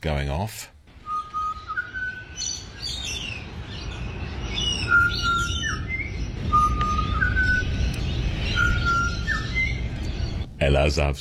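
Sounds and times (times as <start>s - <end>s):
speech: 0.0s - 0.8s, 10.6s - 11.1s
steady low outdoor rumble: 0.7s - 11.1s
other birds chirping: 0.9s - 11.1s
pied butcherbird morning call: 1.0s - 3.2s, 4.5s - 10.4s.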